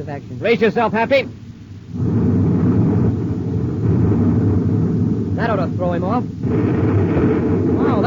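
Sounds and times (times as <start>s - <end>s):
speech: 0.0s - 2.3s, 5.4s - 8.0s
cosmic torpedo blast fired from a pursuing spaceship: 1.2s - 8.0s.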